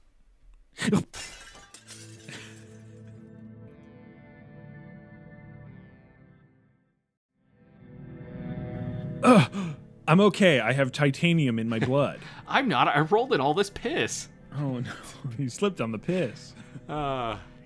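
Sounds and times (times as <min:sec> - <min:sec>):
speech: 0:00.9 - 0:01.2, 0:09.3 - 0:17.5
pane of glass shattering: 0:01.1 - 0:03.2
ringing tinkling glass debris: 0:01.1 - 0:03.2.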